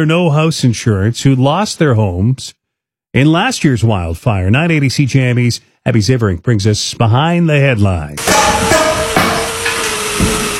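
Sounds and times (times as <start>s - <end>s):
speech: 0.0s - 8.8s
hammers pounding at a construction site: 8.2s - 10.5s.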